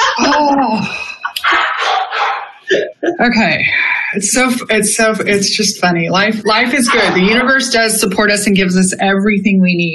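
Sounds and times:
dog barking loudly and excitedly: 0.0 - 0.3, 1.4 - 2.7, 6.8 - 7.4
laughter: 0.0 - 5.6, 6.2 - 8.4
speech: 2.7 - 9.9.

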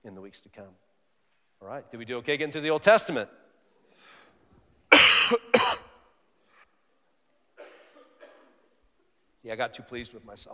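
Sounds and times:
speech: 0.0 - 0.9, 1.6 - 3.4, 9.4 - 10.5
quiet breathing: 3.7 - 4.8, 6.3 - 7.1
sharp loud coughs: 4.9 - 6.1, 7.6 - 8.8.

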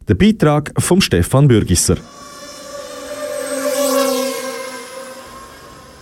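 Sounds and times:
speech: 0.1 - 2.2
small racing drone buzzing past: 1.8 - 5.9.

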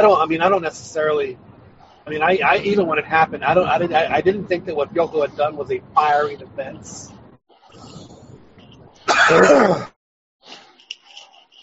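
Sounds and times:
speech: 0.0 - 7.2, 9.1 - 10.0
loud sharp sneeze: 9.1 - 9.9.

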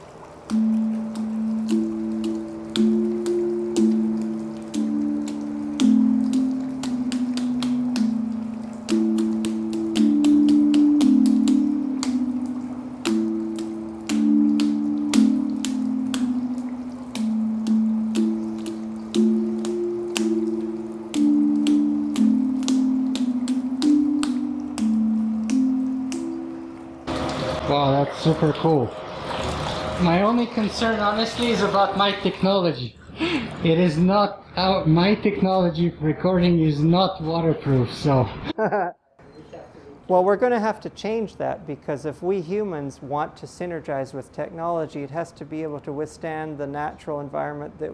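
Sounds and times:
water splashing and dripping: 0.0 - 33.8
hydraulophone water instrument playing a slow melody: 0.3 - 32.2
speech: 28.4 - 29.1, 30.0 - 39.0, 40.1 - 47.9.

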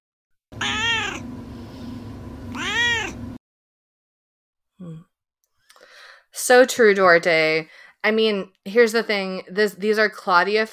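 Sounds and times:
cat meowing: 0.6 - 1.3, 2.5 - 3.2
speech: 6.3 - 10.7.

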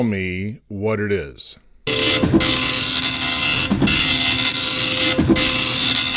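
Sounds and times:
speech: 0.0 - 2.9, 3.7 - 4.2
dot matrix printer rattling through print passes: 1.9 - 6.1.

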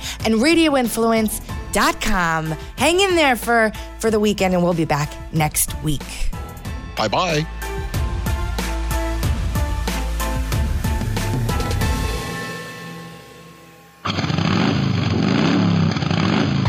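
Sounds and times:
rhythmic music: 0.0 - 13.0
speech: 0.2 - 6.4, 7.0 - 7.6
loud motorcycle engine revving: 14.0 - 16.6.

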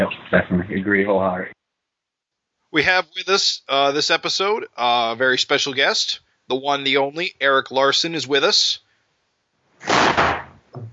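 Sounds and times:
speech: 0.0 - 1.6, 2.7 - 8.8, 9.8 - 10.4
door slamming shut: 9.8 - 10.9
small thud: 9.8 - 10.9.

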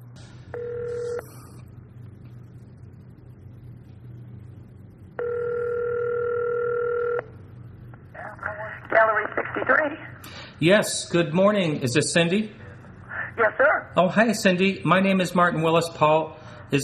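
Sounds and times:
telephone ring tone on an outgoing call: 0.5 - 1.5, 5.2 - 7.3
speech: 9.7 - 12.6, 13.4 - 16.8.

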